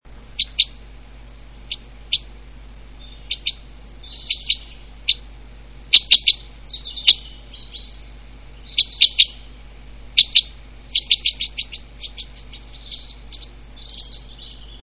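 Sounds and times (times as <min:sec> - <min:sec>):
two-barred crossbill flight call: 0:00.2 - 0:00.9, 0:01.6 - 0:14.8.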